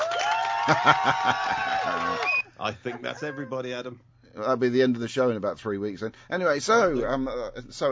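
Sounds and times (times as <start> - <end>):
people cheering and whooping: 0.0 - 2.4
people clapping: 0.0 - 2.4
speech: 0.7 - 7.9.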